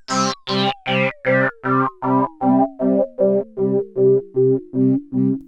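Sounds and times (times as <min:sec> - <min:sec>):
pulse modulated synth: 0:00.1 - 0:05.4.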